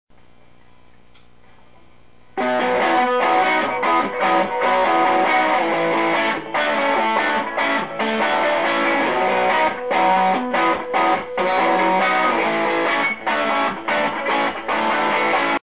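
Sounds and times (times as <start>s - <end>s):
soft electric guitar lead on a Fender Stratocaster: 2.4s - 15.6s.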